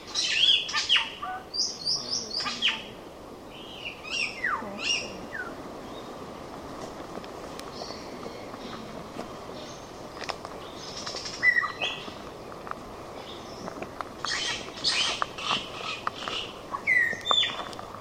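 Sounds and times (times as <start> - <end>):
tooth-billed bowerbird calls: 0.0 - 6.3, 7.5 - 17.9
hissing background: 0.0 - 17.9.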